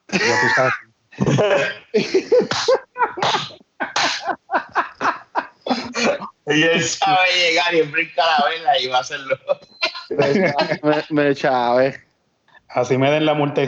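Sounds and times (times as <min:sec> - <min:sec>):
laughter: 0:00.1 - 0:11.4
speech: 0:00.2 - 0:03.6, 0:06.5 - 0:09.6, 0:10.2 - 0:12.1, 0:12.7 - 0:13.6
person making exaggerated sneezing sounds: 0:01.6 - 0:04.4, 0:05.7 - 0:06.3.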